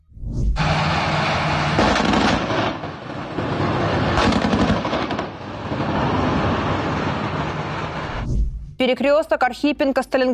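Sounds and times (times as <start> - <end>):
machine gun fire: 0.6 - 8.1
loud steady roar: 0.6 - 8.3
speech: 8.8 - 10.3.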